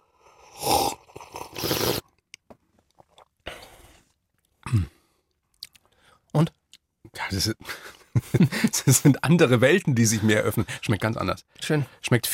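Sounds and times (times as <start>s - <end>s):
slurping coffee during a cupping tasting: 0.4s - 2.2s
small mouth sounds: 0.6s - 2.0s
speech: 4.7s - 4.9s, 7.3s - 7.6s, 8.3s - 12.3s.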